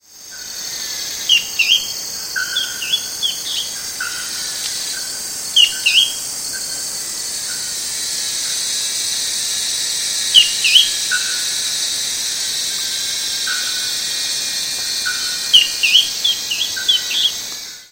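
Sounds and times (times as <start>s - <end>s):
Drymophila ferruginea antbird: 0.4s - 6.7s, 10.3s - 11.6s, 14.8s - 17.9s.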